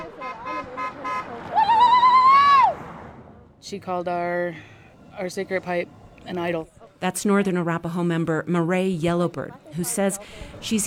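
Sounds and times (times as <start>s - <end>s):
car horns honking: 0.0s - 1.5s
low rumble of traffic and street noise: 0.0s - 6.4s
speech: 3.7s - 10.8s.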